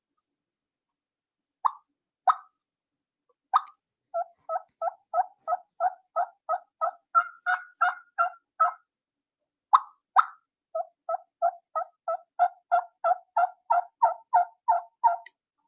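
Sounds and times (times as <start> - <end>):
turkey mouth call imitating a hen's tree call with yelps and bubble clucks: 1.6 - 2.5, 3.5 - 8.9, 9.7 - 15.4.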